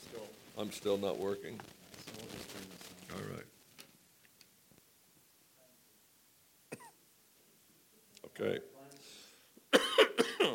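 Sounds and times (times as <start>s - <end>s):
speech: 0.6s - 3.6s, 8.4s - 8.7s
harsh raspy coughs: 6.7s - 7.0s, 9.7s - 10.5s.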